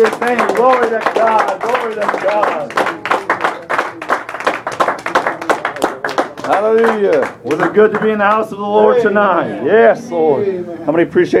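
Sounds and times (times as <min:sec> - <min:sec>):
speech: 0:00.0 - 0:03.0, 0:06.6 - 0:11.3
church service crowd clapping in praise and worship: 0:00.0 - 0:08.6.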